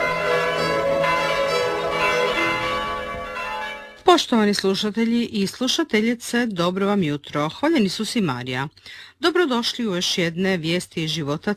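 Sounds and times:
church bells ringing: 0:00.0 - 0:04.1
speech: 0:04.2 - 0:11.5.

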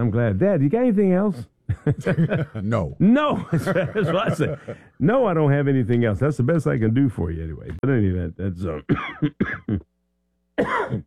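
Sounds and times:
speech: 0:00.0 - 0:09.9, 0:10.6 - 0:11.0
laughter: 0:01.7 - 0:02.7, 0:03.3 - 0:04.9
person coughing: 0:08.8 - 0:09.9, 0:10.6 - 0:11.0.

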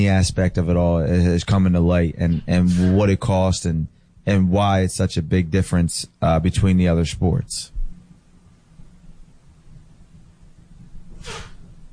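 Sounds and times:
speech: 0:00.0 - 0:07.8
person sneezing: 0:11.2 - 0:11.6.

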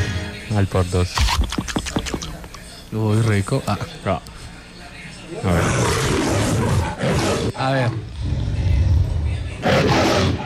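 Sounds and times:
speech: 0:00.5 - 0:01.7, 0:02.9 - 0:04.4, 0:05.3 - 0:06.2, 0:07.1 - 0:08.6
tiger roar from an old TV channel ident: 0:05.4 - 0:10.4.

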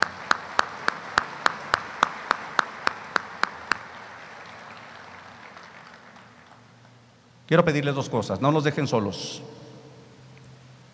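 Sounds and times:
audience clapping rhythmically: 0:00.0 - 0:07.0
faint hum of a large room: 0:00.0 - 0:10.9
speech: 0:07.5 - 0:09.6.

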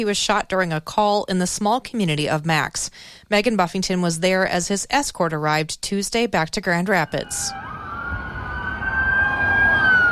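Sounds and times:
speech: 0:00.0 - 0:07.6
police convoy sirens from sheriff's, state patrol and city police vehicles: 0:07.0 - 0:10.1.

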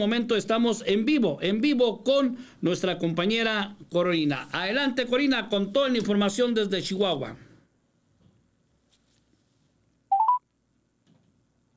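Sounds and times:
speech: 0:00.0 - 0:07.4
telephone keypad DTMF tones while redialing a call: 0:10.1 - 0:10.4.

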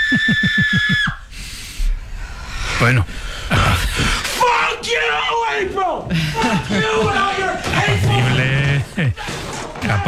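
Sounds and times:
laughter: 0:00.1 - 0:01.3, 0:03.5 - 0:10.0
speech: 0:00.1 - 0:01.5, 0:02.8 - 0:03.9, 0:04.8 - 0:10.0
angry strained voices shouting over one another: 0:04.2 - 0:10.0.

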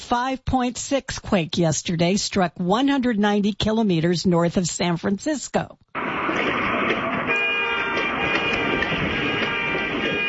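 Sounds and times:
speech: 0:00.1 - 0:05.8
dense noisy background: 0:06.0 - 0:10.2
several car alarms blaring: 0:06.0 - 0:10.2.

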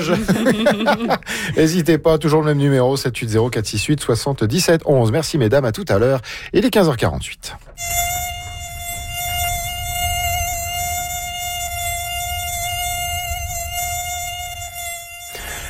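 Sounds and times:
laughter: 0:00.0 - 0:01.7
speech: 0:00.0 - 0:08.1
mosquito whining: 0:07.8 - 0:15.6
low rumble: 0:08.0 - 0:14.9.

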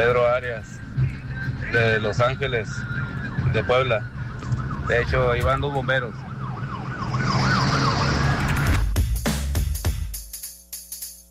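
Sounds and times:
speech: 0:00.0 - 0:01.0, 0:01.7 - 0:06.3
ambulance siren wailing: 0:00.0 - 0:08.8
ambulance engine rumbling as the ambulance pulls up: 0:00.0 - 0:09.0.

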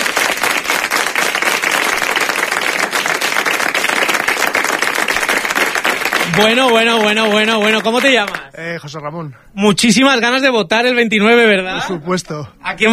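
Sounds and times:
studio audience applause: 0:00.0 - 0:08.5
speech: 0:06.4 - 0:12.9.

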